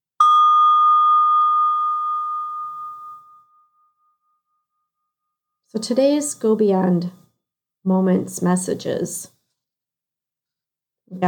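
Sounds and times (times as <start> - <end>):
single bell struck: 0.2 - 4.3
speech: 5.7 - 7.2, 7.8 - 9.4.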